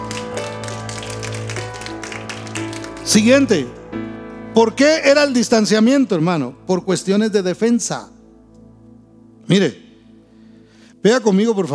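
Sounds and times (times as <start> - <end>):
congregation applauding: 0.0 - 5.4
sustained instrumental tones: 0.0 - 11.4
speech: 3.1 - 3.8, 4.6 - 8.2, 9.5 - 9.8, 11.0 - 11.7.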